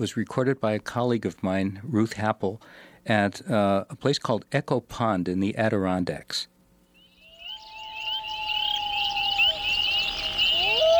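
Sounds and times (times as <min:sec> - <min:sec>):
speech: 0:00.0 - 0:06.5
dense chorus of high chirping frogs: 0:07.0 - 0:10.9
loon giving a long clear wailing note at Echo Pond in the Adirondacks: 0:07.3 - 0:10.9.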